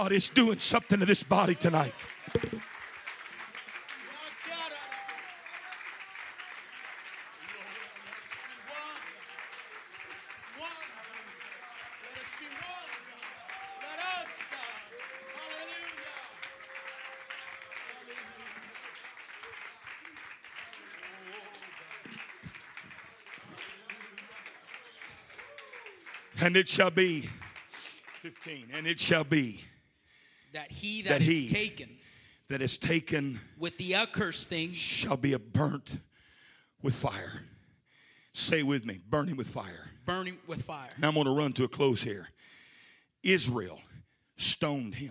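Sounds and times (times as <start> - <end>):
speech: 0.0 - 2.6, 26.5 - 27.4, 28.4 - 29.7, 30.5 - 36.1, 36.8 - 37.5, 38.4 - 42.6, 43.2 - 45.0
large audience clapping in a church: 0.0 - 29.5.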